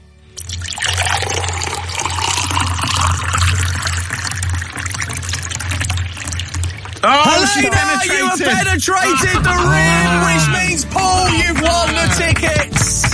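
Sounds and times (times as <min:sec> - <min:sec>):
liquid pouring from a jug: 0:00.4 - 0:08.2
laughter: 0:07.0 - 0:13.0
speech: 0:07.6 - 0:13.0.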